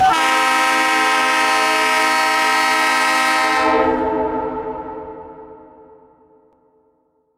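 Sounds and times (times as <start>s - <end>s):
EMD SD70 locomotive horn: 0.0s - 6.2s.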